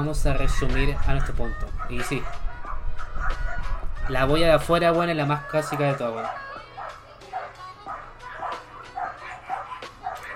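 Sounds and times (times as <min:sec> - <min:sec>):
speech: 0:00.0 - 0:02.5, 0:04.1 - 0:06.5
dogs barking outdoors: 0:00.0 - 0:10.3.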